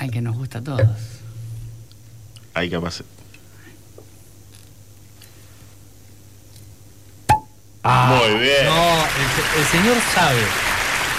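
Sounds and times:
speech: 0.0s - 1.2s, 2.6s - 3.2s, 7.8s - 10.7s
quiet hum: 0.0s - 11.1s
cork pulled from a wine bottle: 7.3s - 7.6s.

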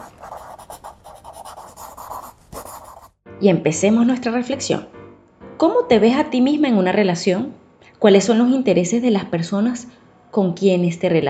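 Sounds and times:
pencil writing on paper: 0.0s - 3.2s
speech: 3.4s - 5.0s, 5.6s - 11.2s.

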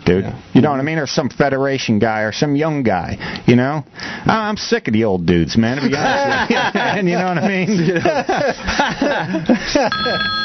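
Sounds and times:
speech: 0.1s - 10.4s
laughter: 5.7s - 10.3s
steady electronic telephone ring of an incoming call: 9.9s - 10.4s.

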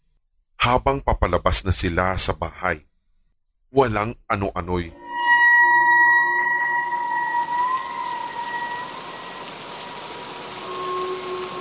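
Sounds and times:
speech: 0.6s - 2.9s, 3.7s - 5.0s
faint sustained tone: 4.9s - 11.6s
heavy rain pouring: 6.8s - 11.6s.

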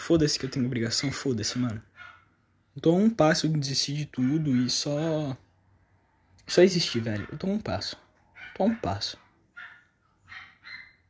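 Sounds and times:
speech: 0.1s - 2.1s, 2.8s - 5.4s, 6.5s - 8.0s, 8.6s - 9.2s
dog barking: 0.8s - 2.3s, 4.1s - 5.2s, 6.8s - 11.0s.

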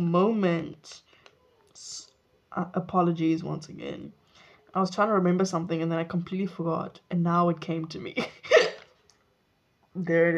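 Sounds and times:
speech: 0.0s - 1.1s, 2.6s - 8.6s, 10.0s - 10.3s
hiccup: 8.5s - 8.8s.

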